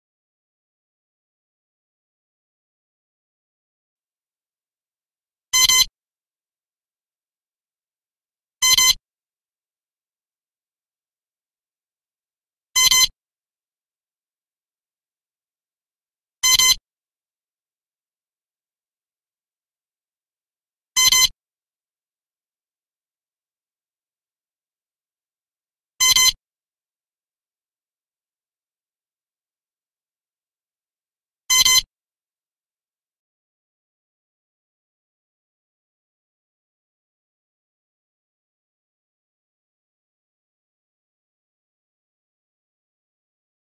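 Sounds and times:
lie detector: 0:05.6 - 0:05.9, 0:08.6 - 0:09.0, 0:12.8 - 0:13.2, 0:16.4 - 0:16.8, 0:21.0 - 0:21.4, 0:26.0 - 0:26.4, 0:31.5 - 0:31.9.

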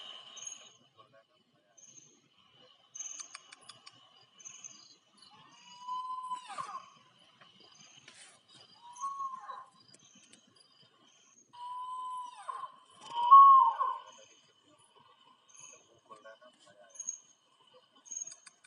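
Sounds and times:
spot-bellied eagle owl: 0:03.0 - 0:09.8, 0:11.6 - 0:15.9.

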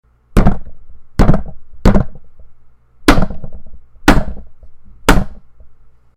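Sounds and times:
hitting a table: 0:00.4 - 0:02.5, 0:03.1 - 0:05.7.

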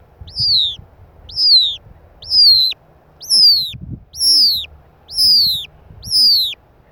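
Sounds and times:
Noble snipe calling with downslurred whistled notes: 0:00.3 - 0:06.6.

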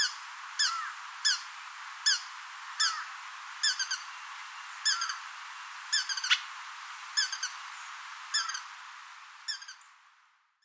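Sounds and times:
Brazilian ruby giving sharp high chipping calls: 0:00.0 - 0:04.1, 0:04.8 - 0:05.2, 0:05.9 - 0:06.5, 0:07.2 - 0:07.6, 0:08.3 - 0:08.7, 0:09.5 - 0:09.9
faint background hiss: 0:00.0 - 0:10.6.

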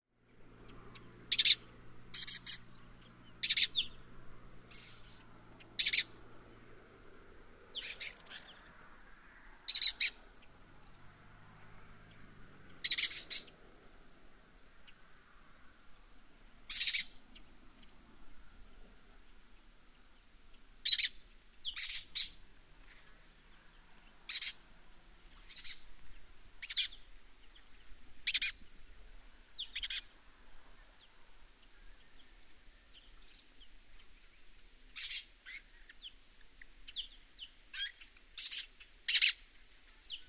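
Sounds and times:
lesser kestrel calling: 0:00.9 - 0:04.1, 0:04.7 - 0:06.2, 0:07.7 - 0:08.8, 0:09.6 - 0:11.1, 0:12.8 - 0:13.6, 0:16.7 - 0:18.0, 0:20.5 - 0:24.6, 0:25.2 - 0:28.6, 0:29.6 - 0:30.2, 0:34.9 - 0:36.2, 0:36.8 - 0:40.2.

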